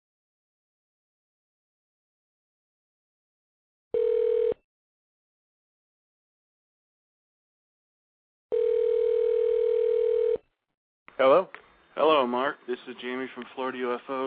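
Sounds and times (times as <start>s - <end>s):
telephone dial tone while placing a call: 4.0s - 4.6s, 8.5s - 10.4s
speech: 11.2s - 14.2s.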